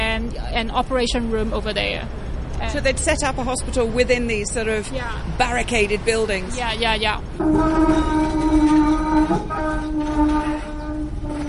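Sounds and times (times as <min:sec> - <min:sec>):
busy street market noise in Hong Kong: 0:00.0 - 0:11.4
tram rumbling past through a street market in Hong Kong: 0:00.0 - 0:11.4
speech: 0:00.4 - 0:10.6
tram humming whine: 0:07.4 - 0:11.4.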